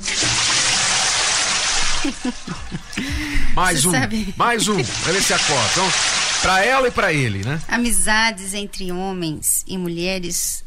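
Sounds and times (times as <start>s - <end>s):
bucket of cold water splashing and pouring: 0.0s - 2.9s, 4.6s - 7.7s
laughter: 2.0s - 5.6s
speech: 2.0s - 10.6s.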